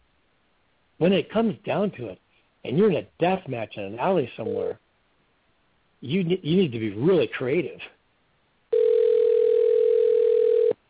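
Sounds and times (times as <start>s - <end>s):
speech: 1.0s - 4.8s, 6.0s - 8.0s
telephone call tone beep: 8.7s - 10.8s.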